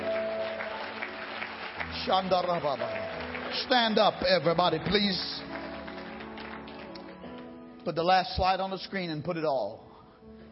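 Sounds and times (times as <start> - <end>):
audience applauding: 0.0 - 7.5
speech: 2.0 - 5.4, 7.9 - 10.4.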